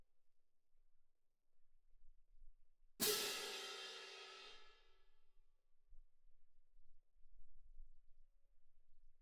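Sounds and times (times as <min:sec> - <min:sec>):
cymbal: 0:03.0 - 0:04.8.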